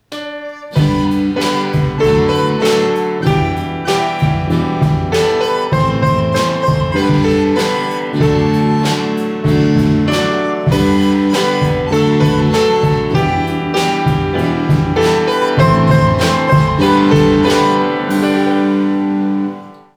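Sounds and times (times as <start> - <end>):
school break bell playing a Christmas carol: 0.6 - 18.9.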